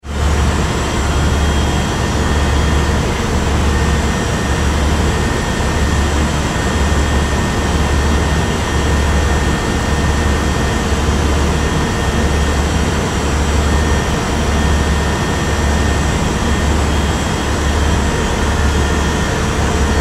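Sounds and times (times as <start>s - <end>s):
large car ferry engine room machinery: 0.0s - 20.0s.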